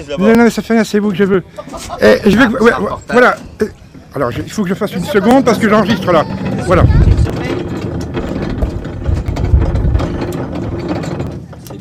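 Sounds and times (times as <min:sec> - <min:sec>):
speech: 0:00.0 - 0:07.0
low tractor engine rumble: 0:01.4 - 0:11.7
laughter: 0:01.5 - 0:03.0
tractor-mounted grape crusher grinding and rattling: 0:04.4 - 0:11.7.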